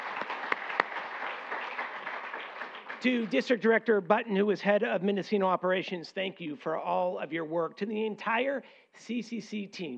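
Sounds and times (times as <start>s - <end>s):
audience at a public agency meeting applauding: 0.0s - 3.5s
speech: 3.0s - 9.9s.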